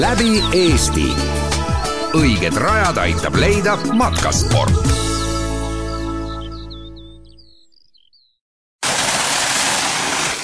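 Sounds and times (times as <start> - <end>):
speech: 0.0 - 5.0
birds chirping: 0.0 - 8.4
water pouring onto a turning water wheel: 8.8 - 10.4.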